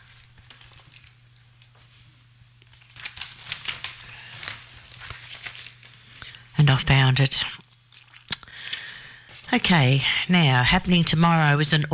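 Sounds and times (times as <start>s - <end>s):
sheets of paper rustling and crinkling as they are shuffled: 0.0s - 2.1s, 2.7s - 6.2s
speech: 6.7s - 7.6s, 9.5s - 11.9s.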